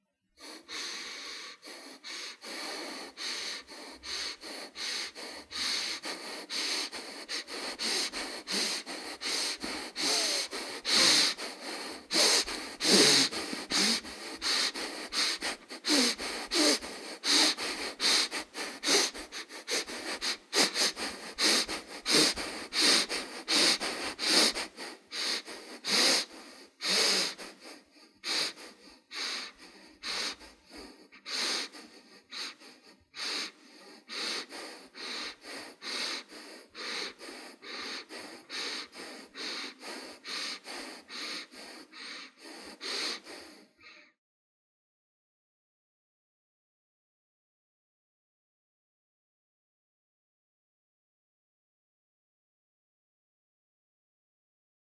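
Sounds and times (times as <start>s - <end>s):
person breathing through nose: 0.4s - 44.1s.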